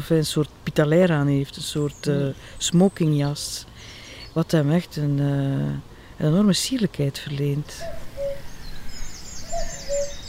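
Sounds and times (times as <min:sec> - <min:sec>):
speech: 0:00.0 - 0:08.0
outdoor noise: 0:00.0 - 0:10.2
common cuckoo calling: 0:07.6 - 0:10.2.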